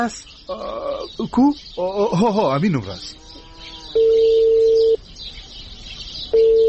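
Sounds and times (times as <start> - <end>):
speech: 0.0 - 3.3
telephone tones as a call is placed on a phone: 3.9 - 5.0, 6.3 - 6.6.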